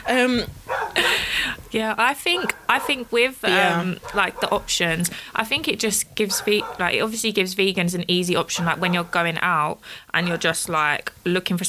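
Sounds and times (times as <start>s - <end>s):
dogs barking: 0.0s - 1.2s, 2.3s - 5.1s, 6.2s - 7.1s, 8.4s - 9.4s
speech: 0.1s - 11.6s.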